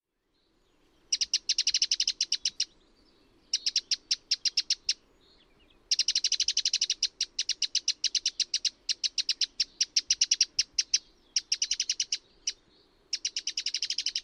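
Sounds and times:
bird calling in sharp high clicking notes: 0:01.1 - 0:02.7, 0:03.6 - 0:05.0, 0:05.9 - 0:14.2.

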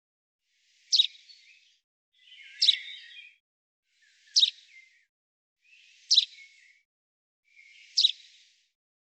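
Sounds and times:
common chaffinch calling: 0:00.8 - 0:01.4, 0:02.2 - 0:03.3, 0:04.1 - 0:04.9, 0:05.7 - 0:06.7, 0:07.6 - 0:08.4.

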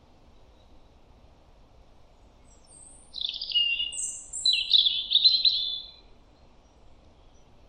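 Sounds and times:
European robin singing: 0:02.4 - 0:07.5.

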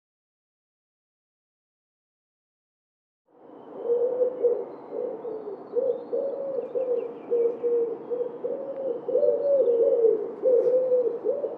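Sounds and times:
wood pigeon giving low hollow coos: 0:03.6 - 0:11.5.

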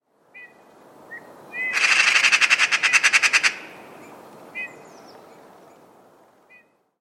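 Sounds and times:
bird harsh buzzy calls: 0:01.6 - 0:03.9.

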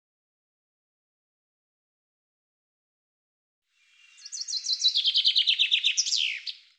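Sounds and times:
common chaffinch song: 0:03.7 - 0:06.7.

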